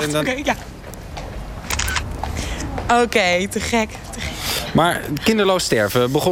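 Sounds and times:
speech: 0.0s - 0.8s, 2.9s - 6.2s
mobile phone camera shutter clicks: 1.7s - 2.1s.

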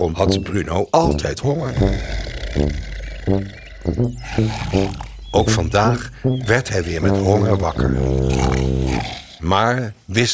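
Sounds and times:
speech: 0.0s - 10.3s
big animal roaring and growling: 1.6s - 5.4s, 6.3s - 9.5s.

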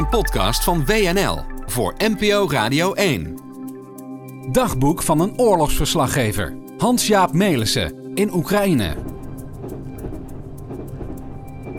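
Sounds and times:
speech: 0.1s - 3.4s, 4.5s - 9.1s
passenger train running on rails: 8.6s - 11.7s.

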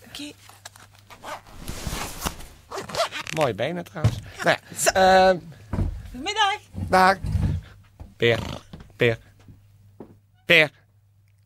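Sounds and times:
speech: 0.2s - 0.6s, 3.4s - 5.6s, 6.2s - 7.3s, 8.2s - 9.2s, 10.5s - 10.8s
shoe being pulled back on with scuffing and rustling: 1.1s - 2.8s.

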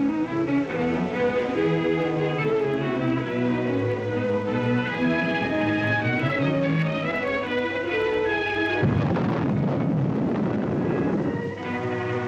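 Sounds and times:
orchestral-style music: 0.0s - 12.2s
dynamite charge detonating underground in a hole: 8.8s - 11.6s.

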